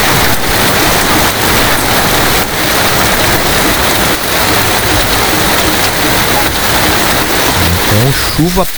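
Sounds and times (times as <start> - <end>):
faint rushing water: 0.0 - 8.7
heavy rain downpour: 0.0 - 8.7
speech: 8.4 - 8.7.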